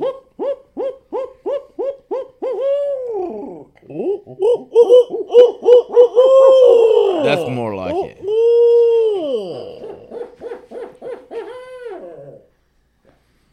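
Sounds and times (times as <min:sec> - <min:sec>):
person imitating barred owl hooting calls: 0:00.0 - 0:10.3.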